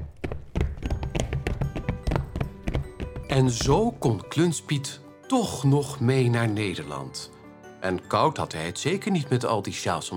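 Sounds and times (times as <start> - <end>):
horse hooves galloping with hollow clops: 0.0 - 4.2
speech: 3.3 - 10.1.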